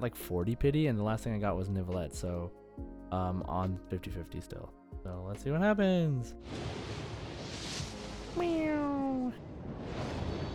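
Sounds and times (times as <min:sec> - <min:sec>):
speech: 0:00.0 - 0:07.0, 0:08.4 - 0:09.4
cat meowing: 0:08.4 - 0:09.4.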